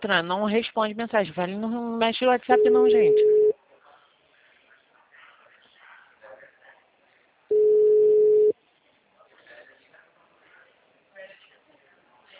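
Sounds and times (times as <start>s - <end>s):
speech: 0.0s - 3.4s
telephone line tone while calling a busy number: 2.5s - 3.5s, 7.5s - 8.5s
quiet talk-like sounds: 2.9s - 12.3s.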